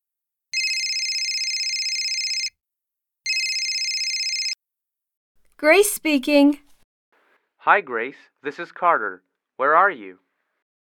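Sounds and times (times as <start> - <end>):
telephone ringing with an electronic trill: 0.6 - 2.5, 3.3 - 4.6
speech: 5.6 - 6.7, 7.6 - 10.2.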